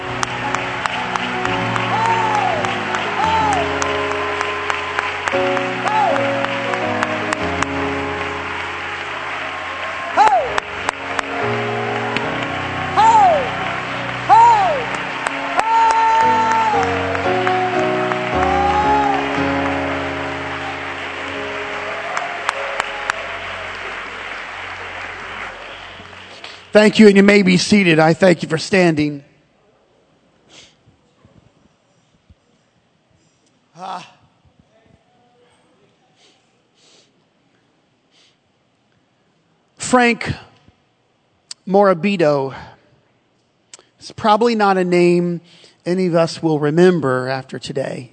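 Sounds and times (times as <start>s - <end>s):
individual raised voices whooping: 0.0s - 7.4s, 8.2s - 26.8s
audience clapping: 0.0s - 28.1s
sustained instrumental chords: 0.0s - 28.2s
audience shouting praise to God: 0.7s - 4.2s, 5.1s - 6.4s, 9.1s - 19.8s
speech: 26.8s - 29.3s, 39.9s - 40.5s, 41.7s - 42.7s, 44.0s - 48.1s.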